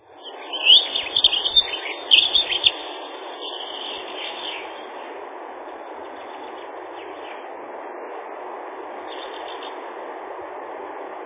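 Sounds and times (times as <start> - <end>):
dunnock Prunella modularis song of quick thin high twittering notes: 0.0 - 5.1, 6.0 - 7.5, 9.0 - 9.8
steady background hiss: 0.0 - 11.2.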